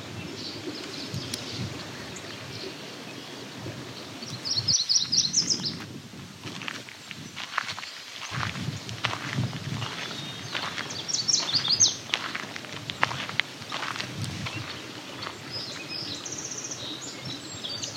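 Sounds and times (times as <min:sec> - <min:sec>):
other faint birds outdoors: 0:00.0 - 0:05.8, 0:06.8 - 0:17.9
song sparrow singing: 0:00.2 - 0:05.8, 0:07.1 - 0:17.9
rustling footsteps outdoors: 0:05.8 - 0:15.9.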